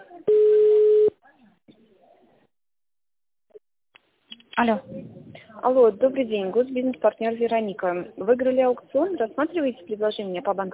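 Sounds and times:
telephone line tone during a call transfer: 0.3s - 1.1s
speech: 4.6s - 10.7s.

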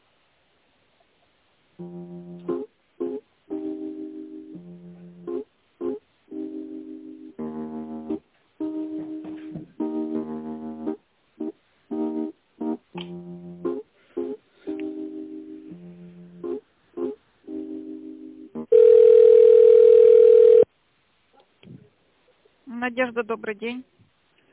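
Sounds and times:
speech: 1.8s - 2.4s, 22.9s - 23.9s
telephone line tones while a call is transferred: 18.6s - 20.7s.

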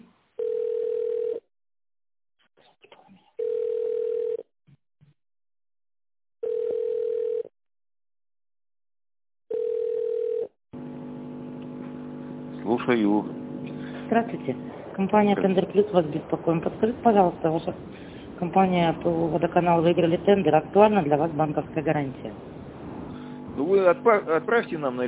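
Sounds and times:
office telephone ringback tone during call transfer: 0.4s - 1.4s, 3.4s - 4.4s, 6.4s - 7.5s, 9.5s - 10.5s
speech: 12.8s - 13.4s, 14.1s - 22.5s, 23.6s - 25.0s.

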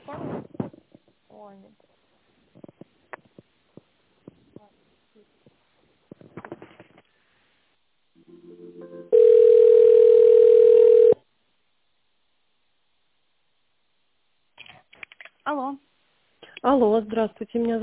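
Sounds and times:
faint rustles: 0.0s - 7.6s
speech: 1.5s - 1.9s, 16.7s - 17.8s
telephone line tone while an office call is transferred: 9.1s - 11.2s.

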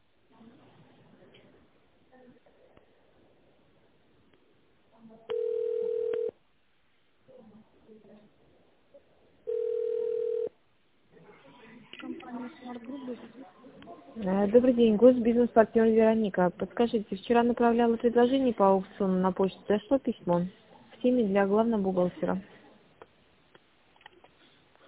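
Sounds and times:
telephone ringback tone on a call to a business line: 5.3s - 6.3s, 9.5s - 10.5s
speech: 14.2s - 22.5s.

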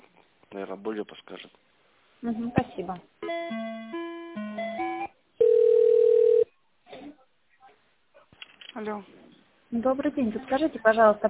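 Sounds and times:
speech: 0.5s - 3.7s, 8.8s - 11.2s
telephone tones while a call is transferred: 5.4s - 6.5s.

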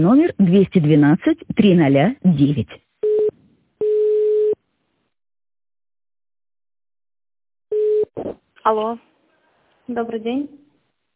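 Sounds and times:
speech: 0.0s - 2.8s, 8.2s - 9.1s, 9.9s - 10.6s
telephone ringback tone while a call is being connected: 3.0s - 4.6s, 7.7s - 8.1s.

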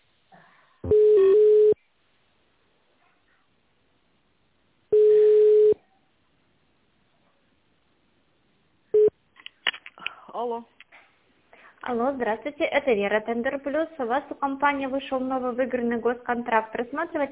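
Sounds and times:
telephone ringback tones while a call is transferred: 0.9s - 1.8s, 4.9s - 5.8s
speech: 10.4s - 10.8s, 11.8s - 17.3s.

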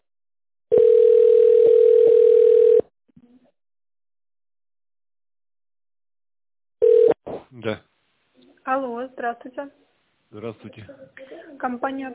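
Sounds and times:
telephone line tone while a call connects: 0.7s - 2.9s, 6.8s - 7.2s
speech: 7.6s - 7.9s, 8.7s - 12.1s.

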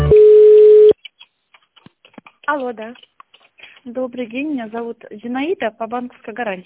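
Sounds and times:
electronic telephone line beeps while a call is transferred: 0.1s - 0.9s
speech: 2.6s - 3.1s, 3.9s - 6.6s.

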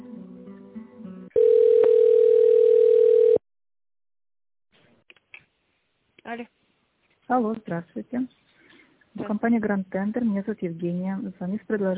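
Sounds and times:
telephone ringing tone while a call is transferred: 1.3s - 3.4s
speech: 6.3s - 6.5s, 7.3s - 8.5s, 9.2s - 11.9s.

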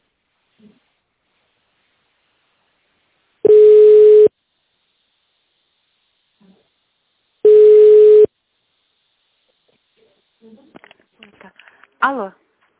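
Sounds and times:
mid-pitched telephone line tones while holding on a company's phone line: 3.5s - 4.3s, 7.5s - 8.3s
speech: 12.0s - 12.4s.

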